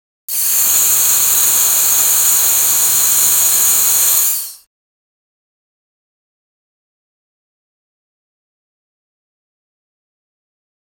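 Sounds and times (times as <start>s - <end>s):
steam engine hissing: 0.3s - 4.7s.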